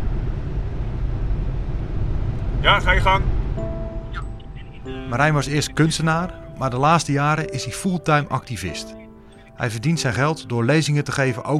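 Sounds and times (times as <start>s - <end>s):
car cabin engine and road drone while driving: 0.0s - 6.0s
speech: 2.6s - 3.4s, 4.8s - 9.0s, 9.6s - 11.5s.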